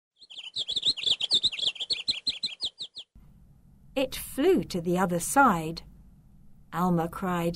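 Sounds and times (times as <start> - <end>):
bird chirping and tweeting: 0.2 - 3.2
speech: 4.0 - 5.9, 6.7 - 7.5.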